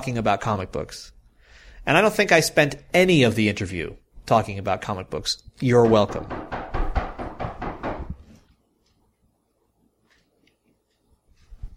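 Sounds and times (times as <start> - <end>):
speech: 0.0 - 1.2, 1.8 - 6.4
faint noise: 0.0 - 11.7
loud sharp knocks on a door: 5.8 - 8.3.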